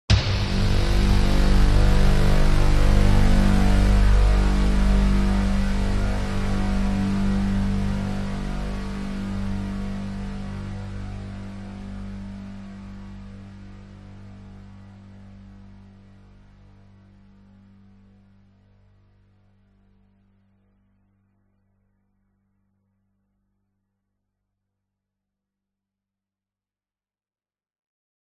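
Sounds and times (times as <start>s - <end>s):
sound design cinematic drum hit: 0.1s - 5.7s
loud menacing buzzing synth: 0.1s - 18.7s.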